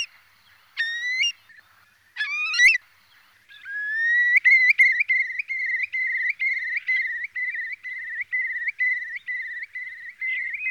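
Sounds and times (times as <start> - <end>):
Eurasian curlew whistling calls: 2.2 - 2.8, 3.6 - 10.6.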